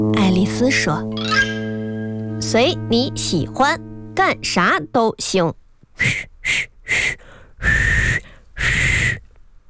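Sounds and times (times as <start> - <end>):
speech: 0.0 - 1.5, 2.5 - 8.0
voice imitating a frog waiter whistling: 7.6 - 9.2.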